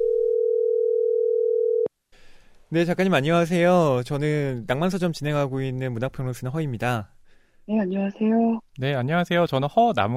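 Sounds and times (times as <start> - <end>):
telephone dial tone while a call is being connected: 0.0 - 1.9
speech: 2.7 - 10.1.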